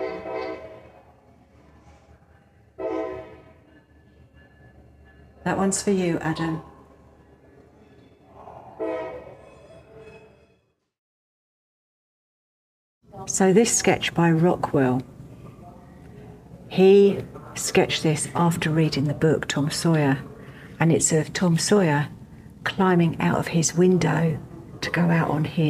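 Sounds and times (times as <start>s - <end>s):
train horn blasts: 0.0s - 1.0s, 2.8s - 3.6s, 8.8s - 9.4s
rumbling rail noise: 0.0s - 10.2s
speech: 5.4s - 6.7s, 13.4s - 15.2s, 16.8s - 25.6s.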